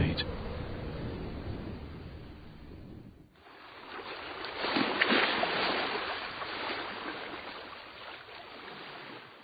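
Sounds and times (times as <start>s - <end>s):
rough water churning and rushing on a stormy sea: 0.0s - 9.4s
big waves smashing into a boat on a stormy sea: 3.4s - 9.3s.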